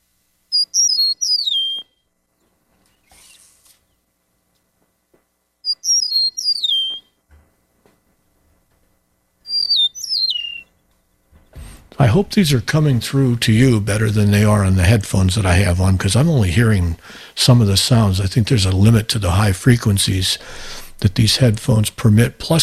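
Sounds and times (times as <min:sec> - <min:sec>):
eastern meadowlark whistled song: 0:00.5 - 0:02.0, 0:05.6 - 0:07.2, 0:09.4 - 0:10.8
speech: 0:12.0 - 0:22.6.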